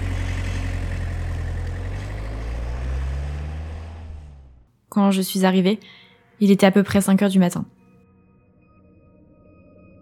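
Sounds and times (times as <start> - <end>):
car engine rumbling while driven slowly home: 0.0 - 4.7
speech: 5.0 - 7.8.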